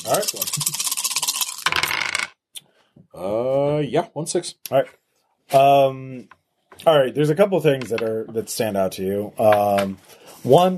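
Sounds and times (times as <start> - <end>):
speech: 0.0 - 1.1, 3.2 - 10.7
dice rolling on a table for a game: 0.0 - 2.4.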